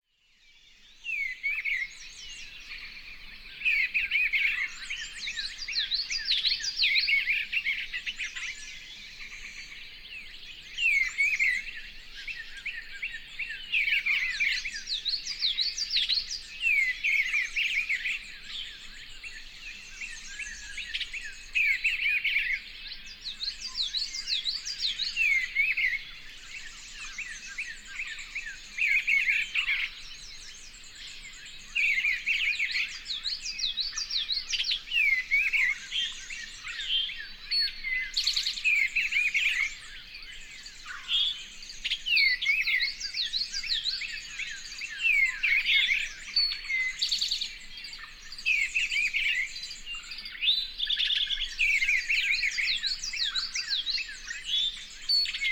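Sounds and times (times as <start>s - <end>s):
bluebird singing in a bramble: 0.3s - 55.4s.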